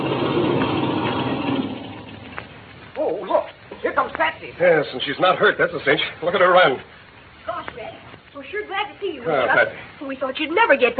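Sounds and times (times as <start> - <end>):
aircraft engine idling: 0.0 - 2.6
speech: 4.2 - 7.0, 8.4 - 10.9.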